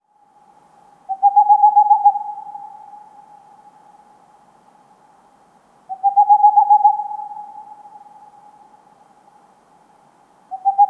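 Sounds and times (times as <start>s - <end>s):
Tengmalm's owl calling in fast runs of soft level hoots: 1.1s - 4.1s, 5.9s - 8.8s, 10.5s - 10.8s.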